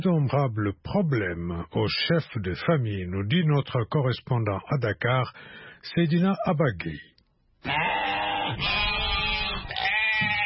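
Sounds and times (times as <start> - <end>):
speech: 0.0 - 8.9
sheep bleating at a livestock market: 7.6 - 10.4.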